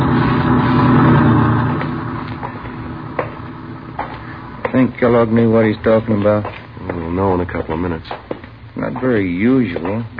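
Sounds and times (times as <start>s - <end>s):
heavy truck engine driving past: 0.0s - 6.8s
speech: 4.9s - 6.6s, 7.2s - 8.2s, 8.8s - 10.1s.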